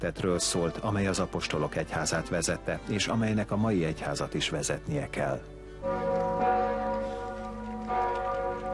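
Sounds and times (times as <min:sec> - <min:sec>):
speech: 0:00.0 - 0:06.3
church bells ringing: 0:05.7 - 0:08.7.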